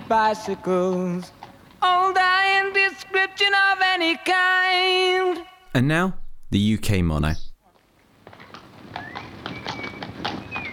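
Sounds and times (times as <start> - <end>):
horse hooves clip-clopping pulling a cart: 0.0 - 2.9, 7.7 - 10.7
speech: 0.1 - 7.4.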